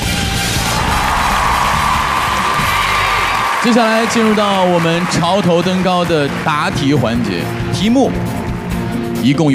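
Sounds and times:
crowd cheering and whooping at a quiz competition: 0.2s - 6.8s
audience applause at a quiz competition: 0.4s - 7.7s
speech: 3.7s - 8.4s, 9.2s - 9.5s.

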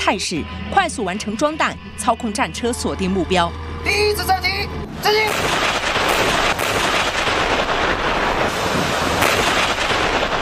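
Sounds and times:
speech: 0.0s - 6.3s
strong wind over open water: 0.0s - 10.4s
rough sea waves around amphibious armoured combat vehicles: 5.0s - 10.4s.

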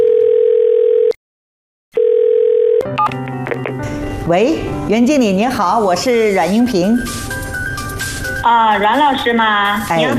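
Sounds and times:
telephone ringback tone while placing a call: 0.0s - 1.2s, 2.0s - 3.1s
music: 2.8s - 10.1s
speech: 4.3s - 7.3s, 8.4s - 10.1s.

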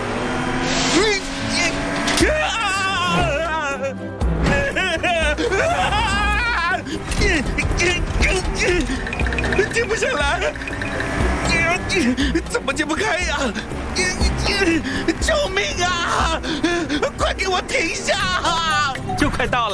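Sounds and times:
car engine starting and running: 0.0s - 19.5s
snickering laughter: 4.6s - 6.9s
speech: 9.8s - 11.2s, 11.9s - 14.0s, 14.6s - 19.7s.

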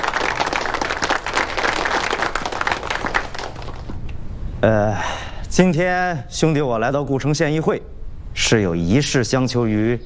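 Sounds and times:
room full of people applauding: 0.0s - 4.0s
speech: 4.6s - 10.0s.

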